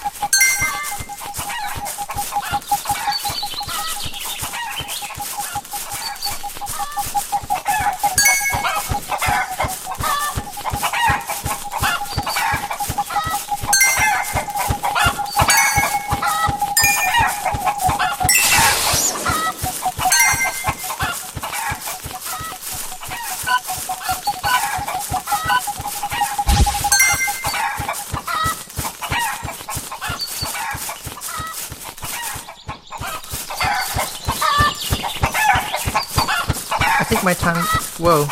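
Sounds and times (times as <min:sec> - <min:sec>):
chicken clucking: 0:00.0 - 0:38.3
brief noisy burst: 0:18.3 - 0:19.8.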